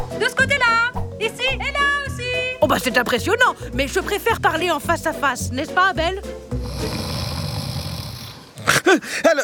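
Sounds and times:
speech: 0.2 - 1.8, 2.7 - 7.0, 8.9 - 9.4
person snoring while dozing off: 6.6 - 8.8.

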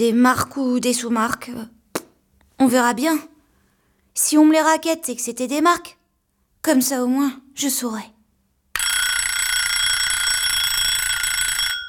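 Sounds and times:
speech: 0.0 - 1.8, 2.6 - 3.3, 4.2 - 6.0, 6.6 - 8.2
alarm clock ringing with electronic tone: 8.8 - 11.8.

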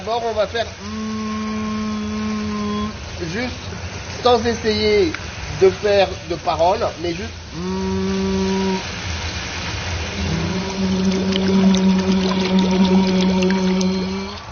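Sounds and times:
speech: 0.0 - 1.2, 3.2 - 8.0
voice humming a steady tone underwater: 0.8 - 3.2, 7.5 - 9.0, 10.1 - 14.5
dense stream of bubbling gurgles underwater: 9.9 - 14.5.

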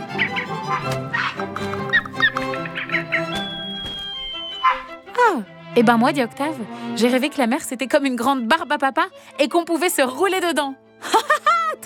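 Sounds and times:
birds squawking and chirping while washing in river water: 0.0 - 5.0
speech: 5.3 - 11.8.

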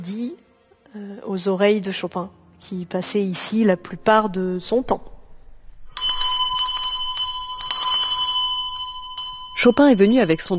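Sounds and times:
speech: 0.0 - 5.1, 9.6 - 10.5
small hand bell ringing to summon a servant: 5.9 - 10.5.

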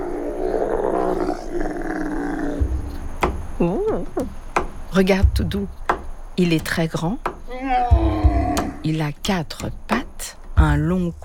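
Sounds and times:
dromedary camel growling in a throaty rumbling bellow: 0.0 - 4.2, 7.5 - 8.8
speech: 3.6 - 4.4, 5.0 - 5.8, 6.4 - 7.3, 8.8 - 10.0, 10.6 - 11.2.

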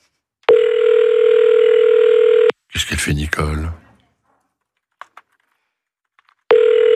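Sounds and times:
unanswered call telephone ringback tone: 0.5 - 2.5, 6.5 - 6.9
speech: 2.9 - 3.8.

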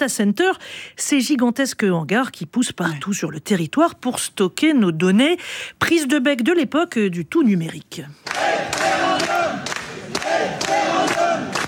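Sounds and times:
speech: 0.0 - 8.8
crowd of about 350 residents chanting in unison in a town hall: 8.2 - 11.6.

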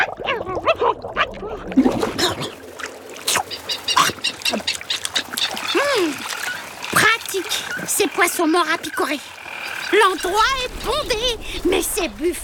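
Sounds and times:
water splashing: 0.0 - 12.4
albatrosses squabbling and calling around a fishing boat: 3.3 - 11.1
speech: 8.4 - 12.4.

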